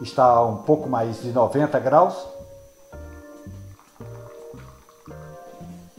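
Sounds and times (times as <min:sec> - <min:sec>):
speech: 0:00.0 - 0:02.4
coffee brewing in an Italian moka pot after the heat is turned off: 0:01.8 - 0:05.9
gurgling, bubbling liquid bursts with a hollow ringing tone: 0:02.9 - 0:05.9.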